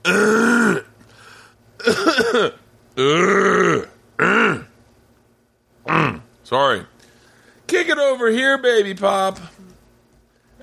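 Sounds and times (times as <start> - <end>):
person clearing throat: 0.0 - 0.9, 1.8 - 4.8
speech: 2.4 - 3.6, 6.5 - 6.9, 7.8 - 9.6.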